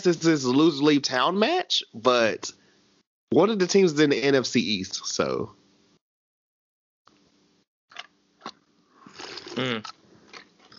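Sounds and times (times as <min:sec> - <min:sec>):
speech: 0:00.0 - 0:02.6, 0:03.3 - 0:05.6, 0:09.6 - 0:10.0
sipping a drink: 0:07.9 - 0:10.7
voiced swallow: 0:09.0 - 0:10.7.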